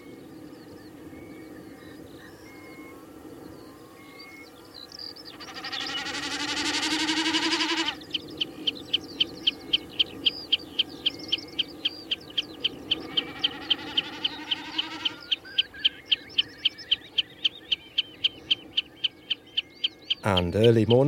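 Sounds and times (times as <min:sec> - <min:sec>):
common snipe chippering calls from the ground on upland heather moor: 0:05.3 - 0:21.0
speech: 0:20.3 - 0:21.0.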